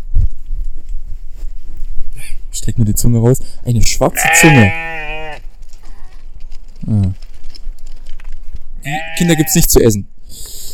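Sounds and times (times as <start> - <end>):
rustling and scuffling farmyard noise: 0.0 - 2.6, 4.8 - 9.3
speech: 2.6 - 5.0, 8.9 - 10.5
sheep or goat bleating: 4.1 - 6.2, 8.8 - 9.7.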